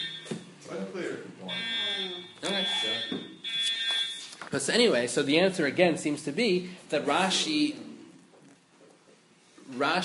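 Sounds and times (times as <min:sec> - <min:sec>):
high steady electronic alarm tone: 0:00.0 - 0:00.5, 0:01.5 - 0:04.3
speech: 0:04.5 - 0:07.8, 0:09.8 - 0:10.0.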